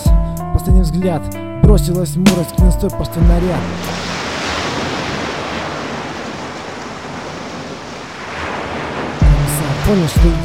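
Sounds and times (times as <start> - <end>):
speech: 0.8 - 4.2, 9.9 - 10.4
stormy ocean surf with waves crashing and surging: 3.1 - 10.4
gusty wind: 3.3 - 10.4.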